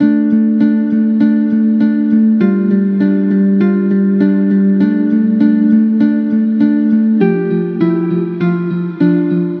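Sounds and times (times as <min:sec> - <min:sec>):
music loop in A minor: 0:00.0 - 0:09.5.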